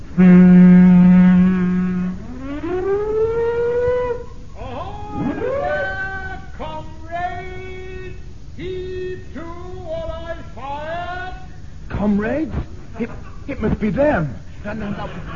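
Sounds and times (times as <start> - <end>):
speech: 0.2 - 0.5, 14.0 - 15.3
ship's siren blaring: 0.2 - 6.4
laughter: 14.6 - 15.3.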